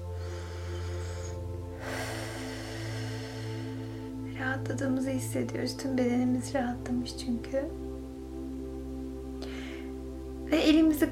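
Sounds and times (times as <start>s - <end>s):
slow deep breath drawn in: 0.0s - 4.3s, 9.4s - 10.1s
soft sustained musical drone: 0.0s - 11.1s
speech: 4.5s - 7.8s.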